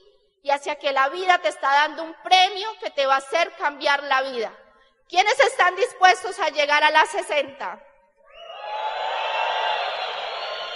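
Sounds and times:
speech: 0:00.5 - 0:07.9
audience shouting: 0:08.4 - 0:10.7.

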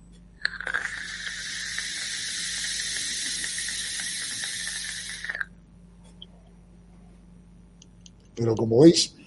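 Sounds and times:
air drawn through a vape device at maximum airflow: 0:00.4 - 0:05.5
speech: 0:08.4 - 0:09.2.

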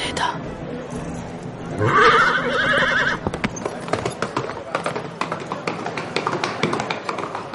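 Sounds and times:
horse neighing: 0:01.8 - 0:03.3
horse hooves clip-clopping along paths: 0:02.7 - 0:07.5.

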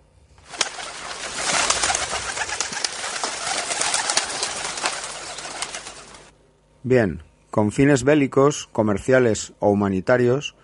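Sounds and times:
flock of homing pigeons cooing and murmuring: 0:00.4 - 0:06.3
sharp rustles of pigeons: 0:00.4 - 0:06.3
speech: 0:06.8 - 0:10.6.

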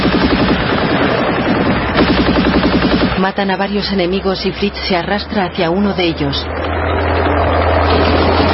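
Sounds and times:
German MG-34 machine gun firing in a battle with tanks: 0:00.0 - 0:03.4
speech: 0:03.2 - 0:08.4.

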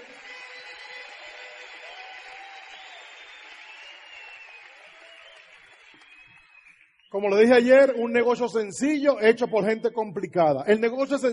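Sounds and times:
audience applause: 0:00.0 - 0:07.0
speech: 0:07.2 - 0:11.3.

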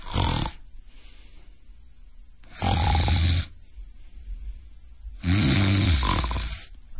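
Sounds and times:
person imitating snoring with an apnea pause: 0:00.0 - 0:00.6, 0:02.5 - 0:03.5, 0:05.2 - 0:06.7.

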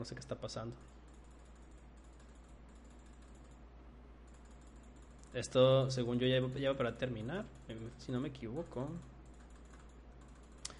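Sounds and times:
speech: 0:00.0 - 0:01.0, 0:05.3 - 0:09.1
low steady hum: 0:00.0 - 0:10.7
soft repeated computer clicks: 0:00.8 - 0:03.6, 0:04.2 - 0:05.6, 0:08.8 - 0:10.7.

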